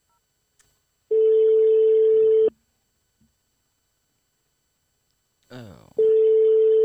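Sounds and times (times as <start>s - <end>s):
outgoing call ringback tone while phoning a shop: 1.1s - 2.5s, 6.0s - 6.8s
brief vocal sound: 5.5s - 6.0s.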